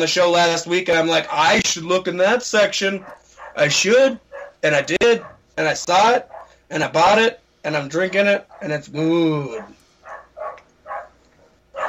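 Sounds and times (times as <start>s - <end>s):
speech: 0.0s - 9.8s
dog barking: 3.0s - 3.7s, 4.3s - 5.5s, 6.2s - 6.6s, 8.5s - 8.7s, 9.5s - 11.8s.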